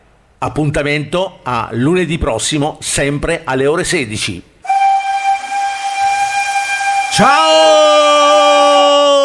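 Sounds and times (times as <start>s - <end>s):
speech: 0.4s - 4.5s, 7.2s - 8.2s
steam train whistle blowing as the train passes: 4.6s - 8.9s.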